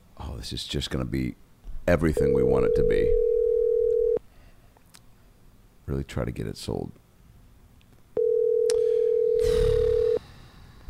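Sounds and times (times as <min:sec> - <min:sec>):
speech: 0:00.4 - 0:03.3, 0:05.9 - 0:07.0
electronic ringing tone of an outgoing telephone call: 0:02.2 - 0:04.2, 0:08.2 - 0:10.2.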